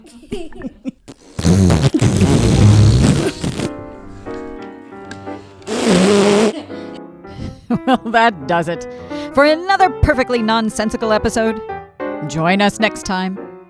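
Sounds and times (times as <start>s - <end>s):
speech: 0.0s - 0.9s, 7.9s - 13.4s
vocal noises: 1.1s - 3.7s, 5.7s - 6.6s
loud raspy fart: 1.1s - 3.8s, 5.7s - 6.6s.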